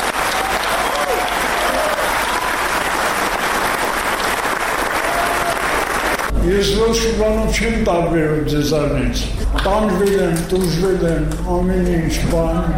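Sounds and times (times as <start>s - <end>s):
large audience applauding in a packed hall after a film screening: 0.0s - 6.3s
speech: 6.5s - 12.7s.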